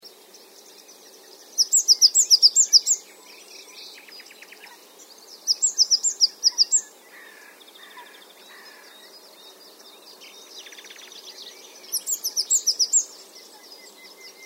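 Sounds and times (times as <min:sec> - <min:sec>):
faint twittering and chirps: 0:00.0 - 0:14.4
great tit Parus major calling: 0:01.4 - 0:03.4, 0:04.5 - 0:09.2, 0:11.9 - 0:13.2.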